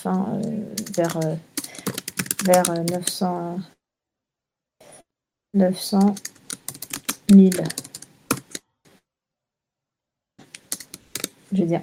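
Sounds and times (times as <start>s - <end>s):
speech: 0.0s - 1.5s, 2.4s - 3.8s, 5.5s - 6.4s, 7.3s - 7.9s, 11.5s - 11.8s
typing on a computer keyboard: 0.1s - 3.2s, 5.8s - 8.6s, 10.4s - 11.4s.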